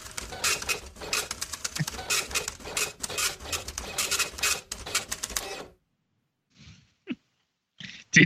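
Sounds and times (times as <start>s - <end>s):
printer printing: 0.0s - 5.8s.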